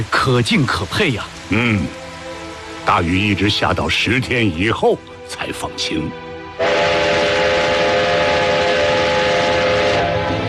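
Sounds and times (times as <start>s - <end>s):
speech: 0.0s - 2.0s, 2.8s - 6.2s
train rumbling on railway tracks: 6.6s - 10.4s.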